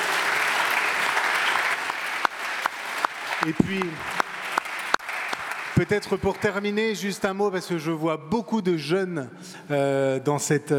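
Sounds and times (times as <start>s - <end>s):
sharp individual claps: 0.0s - 6.6s
audience applause in a lecture hall: 0.0s - 7.0s
speech: 3.4s - 4.2s, 5.8s - 10.7s.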